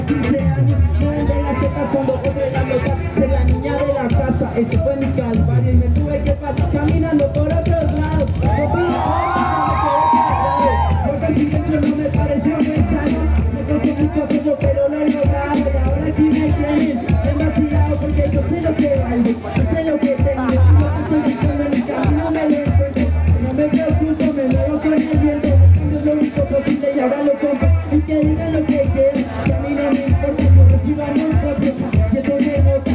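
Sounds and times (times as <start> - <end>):
large crowd cheering and shouting at a trans rights march: 0.0 - 32.9
speech: 4.6 - 5.6
laughter: 20.0 - 22.7.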